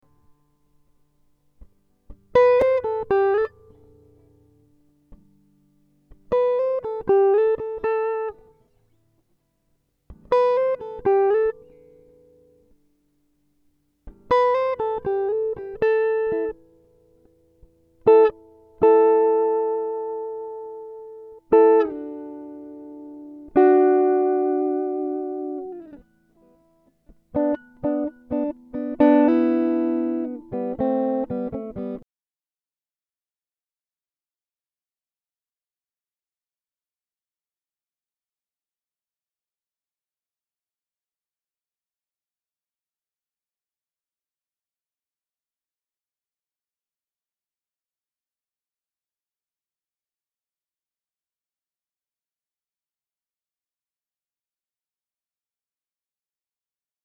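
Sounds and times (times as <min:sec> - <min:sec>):
guitar improvisation: 0:01.6 - 0:09.0, 0:10.1 - 0:12.7, 0:14.1 - 0:32.0.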